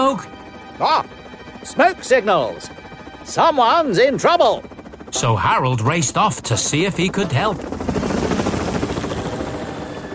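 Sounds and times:
speech: 0:00.1 - 0:08.0
helicopter rotor thumping as it flies: 0:01.1 - 0:10.1.

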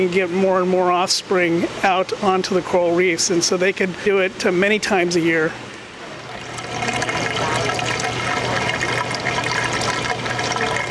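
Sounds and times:
speech: 0:00.0 - 0:05.8
low constant mechanical hum: 0:00.0 - 0:10.8
water flowing into a coral tank: 0:05.1 - 0:10.8.

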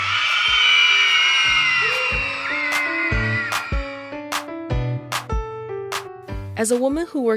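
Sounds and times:
group of girls cheering and whooping loudly: 0:00.0 - 0:04.5
upbeat music with steady notes and sharp regular drum hits: 0:01.4 - 0:07.1
speech: 0:06.6 - 0:07.3.

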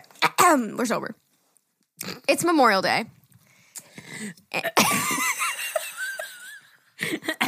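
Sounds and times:
speech: 0:00.5 - 0:01.2, 0:02.0 - 0:03.2, 0:04.2 - 0:05.2
harsh coughing fit: 0:04.6 - 0:05.3, 0:07.0 - 0:07.4.

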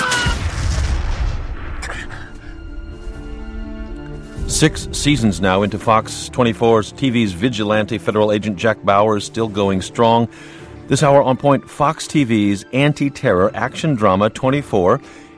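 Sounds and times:
suitcase bomb explosion in a TV action drama: 0:00.2 - 0:02.5, 0:03.3 - 0:05.9
deep rolling rumble after explosion: 0:00.4 - 0:06.5
speech: 0:04.6 - 0:15.3.

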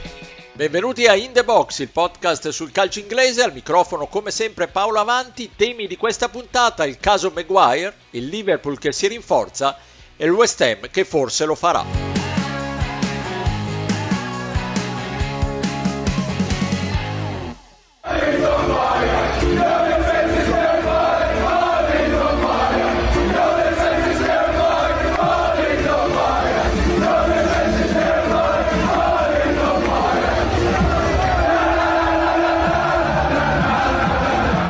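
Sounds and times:
speech: 0:00.6 - 0:12.4
stadium crowd of football fans chanting at a defender: 0:12.0 - 0:17.0, 0:18.0 - 0:34.6.

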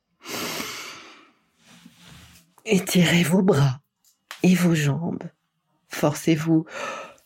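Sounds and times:
person taking a deep energizing breath: 0:00.2 - 0:01.4, 0:06.7 - 0:07.2
speech: 0:02.6 - 0:03.8, 0:04.4 - 0:05.4, 0:06.0 - 0:07.0.

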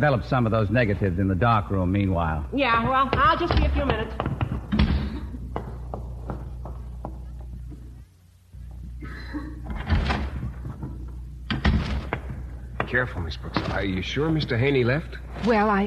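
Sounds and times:
speech: 0:00.0 - 0:04.9, 0:12.9 - 0:15.8
knocks and bumps: 0:02.6 - 0:08.0, 0:09.6 - 0:14.6
door slamming shut: 0:09.7 - 0:14.2.

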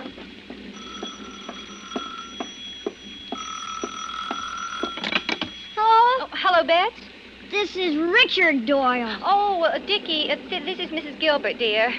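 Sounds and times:
telephone ringing with a bright trilling bell: 0:00.8 - 0:06.2
speech: 0:06.6 - 0:11.9.

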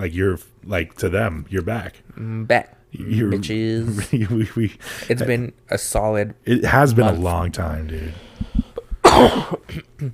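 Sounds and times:
speech: 0:00.0 - 0:08.3, 0:09.2 - 0:10.1
rasping throat noises: 0:08.0 - 0:10.1
sick person coughing harshly: 0:09.0 - 0:10.1.

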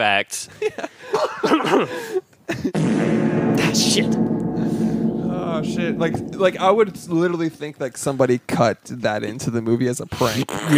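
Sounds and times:
speech: 0:00.0 - 0:04.9, 0:05.5 - 0:10.7
person faking a cough with the voice: 0:01.4 - 0:02.0.

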